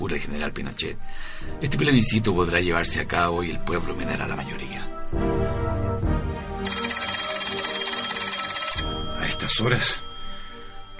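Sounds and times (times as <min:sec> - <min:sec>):
speech: 0:00.0 - 0:05.8, 0:09.4 - 0:10.1
telephone ringing with bright electronic trill: 0:06.6 - 0:10.9.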